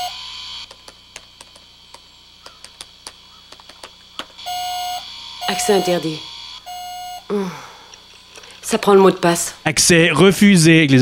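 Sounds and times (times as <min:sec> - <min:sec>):
steady electronic tone from an old film computer: 0:00.0 - 0:00.6, 0:04.4 - 0:07.4
sharp irregular ticks and clicks from an old film computer: 0:00.6 - 0:04.4
speech: 0:05.5 - 0:06.3, 0:07.3 - 0:07.7, 0:08.7 - 0:11.0.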